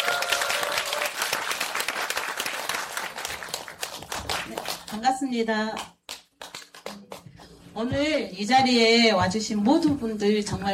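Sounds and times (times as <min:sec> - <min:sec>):
audience applause: 0:00.0 - 0:04.9
speech: 0:04.9 - 0:05.9, 0:07.8 - 0:10.7.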